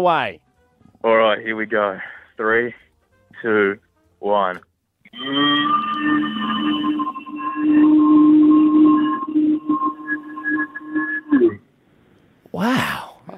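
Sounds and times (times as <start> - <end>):
speech: 0.0 - 0.4, 1.0 - 2.8, 3.4 - 6.3, 12.5 - 13.1
person imitating a cow's moo: 5.1 - 11.6.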